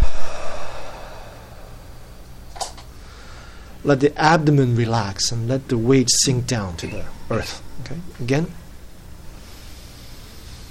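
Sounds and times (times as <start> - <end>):
slow breath pushed out through the mouth during a relaxation breathing exercise: 0.0 - 2.1, 3.0 - 3.8
speech: 3.8 - 8.6.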